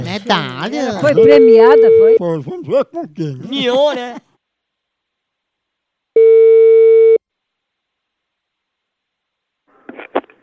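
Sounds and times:
speech: 0:00.1 - 0:04.3
telephone line tone beep while placing a call: 0:01.2 - 0:02.2, 0:06.2 - 0:07.2.

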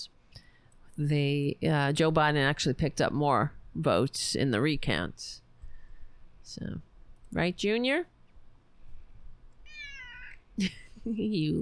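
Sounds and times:
speech: 0:01.0 - 0:05.4, 0:06.5 - 0:08.1, 0:10.6 - 0:11.5
high drawn-out cat meow: 0:09.6 - 0:10.4.

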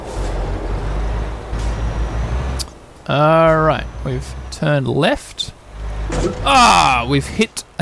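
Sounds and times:
heavy truck engine rumbling: 0:00.0 - 0:07.8
speech: 0:03.1 - 0:07.7.

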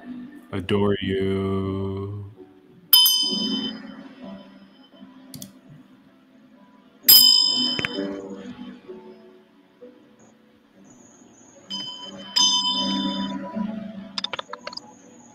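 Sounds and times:
speech: 0:00.5 - 0:02.3
bell struck with a bright metallic tone: 0:03.0 - 0:03.9, 0:07.1 - 0:08.2, 0:11.7 - 0:13.6.

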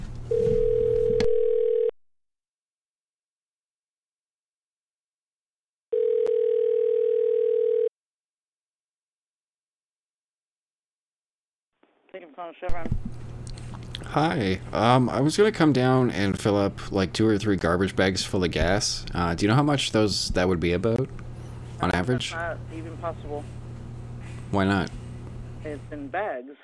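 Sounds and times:
telephone ringback tone of an unanswered call: 0:00.3 - 0:01.9, 0:05.9 - 0:07.9
speech: 0:12.4 - 0:13.2, 0:14.1 - 0:21.2, 0:21.8 - 0:23.6, 0:24.5 - 0:25.0, 0:25.6 - 0:26.6.

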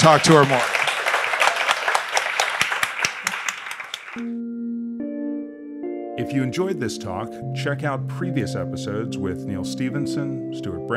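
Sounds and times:
speech: 0:00.0 - 0:00.8, 0:04.2 - 0:04.5, 0:06.2 - 0:10.9
audience applause: 0:00.0 - 0:04.3
sustained musical tones: 0:04.2 - 0:10.9.

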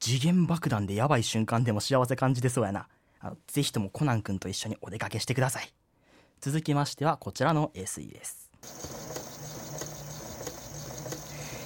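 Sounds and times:
speech: 0:00.0 - 0:05.8, 0:06.4 - 0:09.0
sewing machine running: 0:08.6 - 0:11.6.

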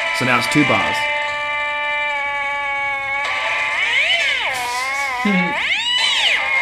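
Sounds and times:
speech: 0:00.2 - 0:01.1, 0:05.2 - 0:05.6
cats yowling and caterwauling: 0:01.9 - 0:06.6.

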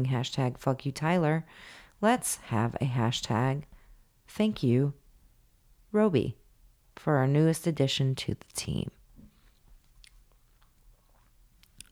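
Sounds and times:
speech: 0:00.0 - 0:03.7, 0:04.3 - 0:05.0, 0:05.9 - 0:06.4, 0:07.0 - 0:09.0
chewing and mouth noises: 0:09.8 - 0:11.9.

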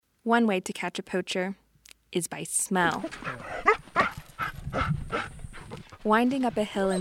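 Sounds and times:
speech: 0:00.2 - 0:03.6, 0:06.0 - 0:07.0
tracker dog barking during a ranger training exercise in southern Kenya: 0:03.6 - 0:05.3.

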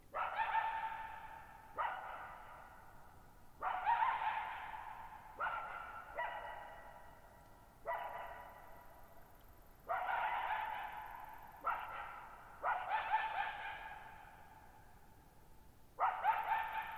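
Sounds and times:
lone coyote barking and howling in a mountain meadow: 0:00.1 - 0:02.9, 0:03.6 - 0:07.2, 0:09.8 - 0:14.7, 0:16.0 - 0:16.9.

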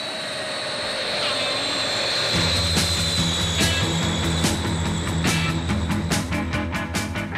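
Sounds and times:
jet engine roaring past with a high-pitched whine: 0:00.0 - 0:07.3
driving rock band with pounding drums: 0:02.4 - 0:07.3.

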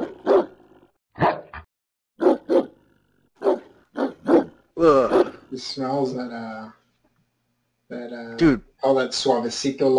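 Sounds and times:
dog barking: 0:00.0 - 0:00.6, 0:01.2 - 0:01.6, 0:02.2 - 0:02.8, 0:03.4 - 0:05.4
speech: 0:04.8 - 0:06.8, 0:07.9 - 0:09.9.

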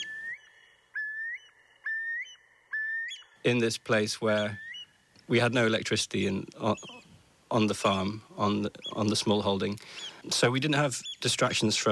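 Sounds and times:
Eurasian curlew whistled calls: 0:00.0 - 0:05.3, 0:06.6 - 0:07.2, 0:08.2 - 0:11.6
speech: 0:03.4 - 0:04.7, 0:05.3 - 0:11.9.

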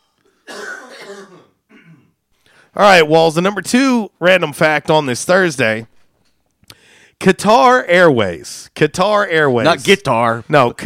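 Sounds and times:
person coughing harshly: 0:00.2 - 0:02.2
throat-clearing rasp: 0:00.2 - 0:02.2
speech: 0:01.1 - 0:01.6, 0:02.8 - 0:05.9, 0:07.2 - 0:10.8.

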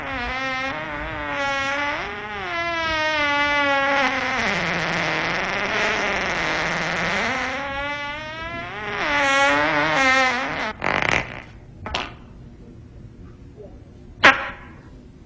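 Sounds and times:
long loud buzzy fart: 0:00.0 - 0:12.2.

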